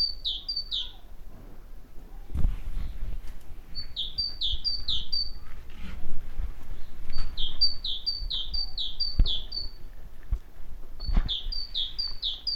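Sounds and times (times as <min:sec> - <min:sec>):
great tit Parus major song of ringing high-low note pairs: 0:00.0 - 0:01.1, 0:03.7 - 0:05.4, 0:06.8 - 0:09.9, 0:11.0 - 0:12.5
low noise: 0:00.0 - 0:12.5.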